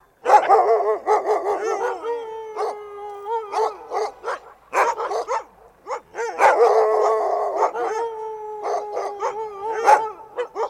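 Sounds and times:
dog barking: 0:00.2 - 0:02.0, 0:03.5 - 0:08.0, 0:08.7 - 0:10.6
dog howling: 0:00.4 - 0:10.6.

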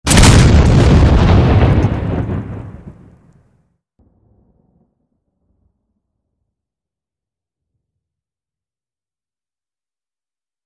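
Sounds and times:
bunker explosion: 0:00.0 - 0:06.2.

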